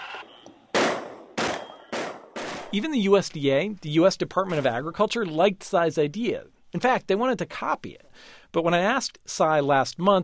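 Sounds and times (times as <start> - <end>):
loud gunshots fired at a feral pig at night over fields: 0.7 - 2.8
speech: 2.7 - 10.2.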